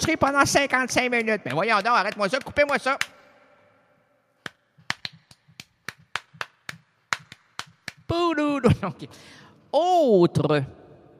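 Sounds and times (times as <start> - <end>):
speech: 0.0 - 3.2, 8.1 - 10.8
sharp hand claps in applause: 0.0 - 3.3, 4.4 - 8.2.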